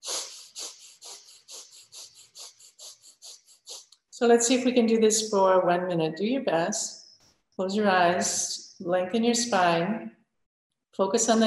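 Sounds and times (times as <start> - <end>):
deep belly breathing, inhaling and exhaling: 0.0 - 3.9
speech: 4.2 - 7.0, 7.6 - 10.2, 11.0 - 11.4.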